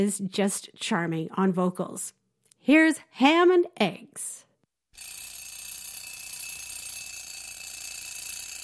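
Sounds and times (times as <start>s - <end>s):
speech: 0.0s - 5.2s
bell alarm clock ringing: 5.0s - 8.6s.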